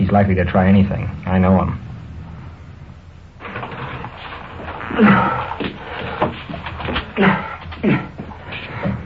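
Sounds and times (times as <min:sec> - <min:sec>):
speech: 0:00.0 - 0:01.9, 0:05.0 - 0:05.3
shuffling and rustling movement: 0:02.3 - 0:09.0
door creaking open with groaning squeaks: 0:03.4 - 0:07.1.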